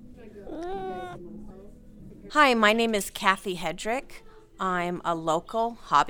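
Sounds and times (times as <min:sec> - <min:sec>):
low murmur of room noise: 0:00.0 - 0:06.0
cat meowing: 0:00.5 - 0:01.2
speech: 0:02.3 - 0:06.0.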